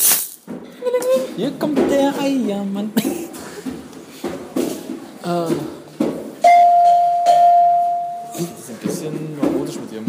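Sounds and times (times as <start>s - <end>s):
speech: 1.4s - 3.4s, 5.3s - 5.7s
soft knocks: 3.1s - 10.0s
bell ringing: 6.4s - 8.5s.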